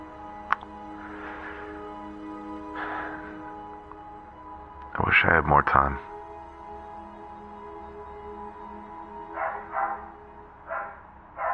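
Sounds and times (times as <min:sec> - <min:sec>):
speech: 0:05.2 - 0:06.1
dog barking: 0:09.3 - 0:10.1, 0:10.7 - 0:11.5.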